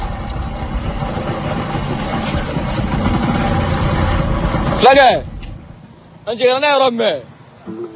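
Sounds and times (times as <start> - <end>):
motorcycle engine idling while parking: 0.2 - 4.9
speech: 4.8 - 5.3, 6.3 - 7.3.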